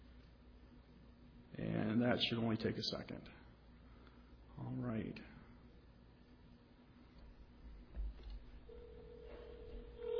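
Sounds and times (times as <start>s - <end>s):
speech: 1.6s - 3.4s, 4.8s - 5.4s
phone ringing tone over a line: 8.7s - 10.1s.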